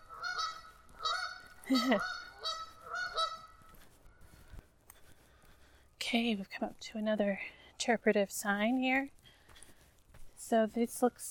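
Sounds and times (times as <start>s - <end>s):
geese honking by a river along a hiking trail: 0.0s - 3.8s
speech: 1.7s - 2.2s, 6.1s - 9.2s, 10.5s - 11.3s.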